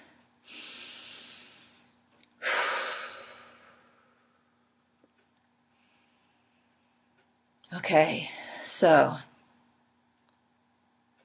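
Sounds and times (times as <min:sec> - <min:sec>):
deep slow breaths: 0:00.0 - 0:04.5, 0:05.6 - 0:07.1
speech: 0:07.7 - 0:09.3.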